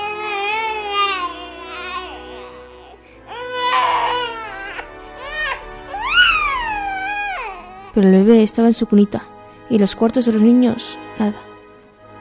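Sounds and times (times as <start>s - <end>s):
children crying in wavering high-pitched wails: 0.0s - 8.0s
speech: 8.0s - 11.5s.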